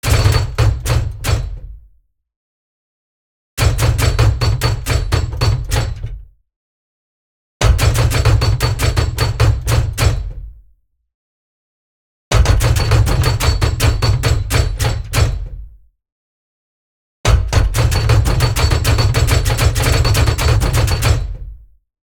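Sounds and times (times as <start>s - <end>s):
large metal gearbox: 0.0s - 1.6s, 3.6s - 6.2s, 7.6s - 10.4s, 12.3s - 15.6s, 17.3s - 21.4s.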